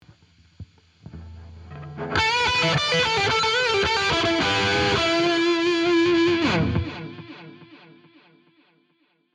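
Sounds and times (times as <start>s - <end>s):
guitar solo: 1.1s - 8.4s.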